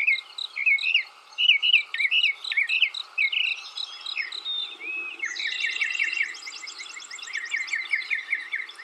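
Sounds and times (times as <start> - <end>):
mockingbird song: 0.0 - 8.8.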